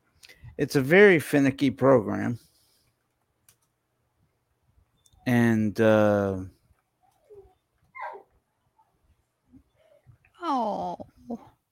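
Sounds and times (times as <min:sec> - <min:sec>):
speech: 0:00.6 - 0:02.5, 0:05.3 - 0:06.6, 0:10.5 - 0:11.5
dog yipping and whimpering: 0:07.2 - 0:08.3.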